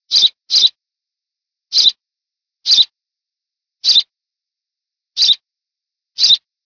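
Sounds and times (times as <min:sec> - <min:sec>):
house sparrow Passer domesticus: 0:00.0 - 0:00.8, 0:01.7 - 0:02.0, 0:02.6 - 0:03.0, 0:03.8 - 0:04.2, 0:05.2 - 0:05.5, 0:06.2 - 0:06.5.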